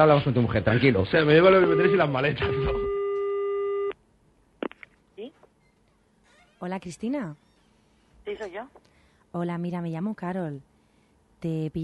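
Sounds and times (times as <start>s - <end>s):
speech: 0.0s - 3.0s, 6.6s - 7.4s, 8.2s - 10.7s, 11.4s - 11.8s
telephone tone after a call is hung up: 1.6s - 4.0s.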